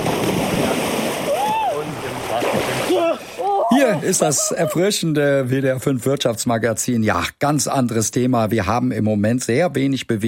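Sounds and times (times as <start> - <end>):
loud churning splash of someone pushed into water: 0.0 - 4.2
brief rising-and-falling vocal cry: 2.9 - 4.8
speech: 3.9 - 10.2.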